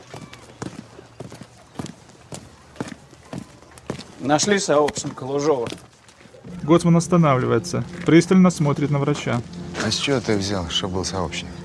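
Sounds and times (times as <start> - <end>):
footsteps of two people going down a staircase: 0.0 - 6.4
speech: 4.2 - 5.9, 6.7 - 11.6.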